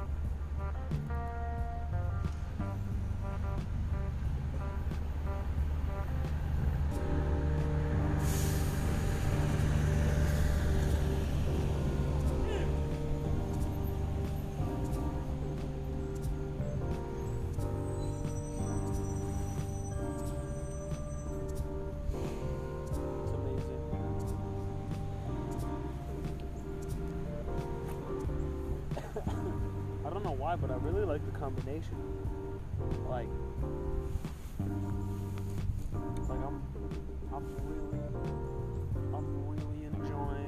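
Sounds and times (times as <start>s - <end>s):
street traffic of cars and buses rumbling: 0.0s - 40.4s
large vehicle passing: 1.3s - 32.8s
speech: 30.6s - 32.1s.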